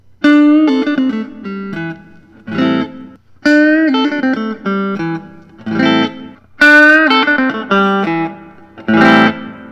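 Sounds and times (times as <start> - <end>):
Fender Custom Shop 50s Thinline electric guitar: 0.0 - 9.6.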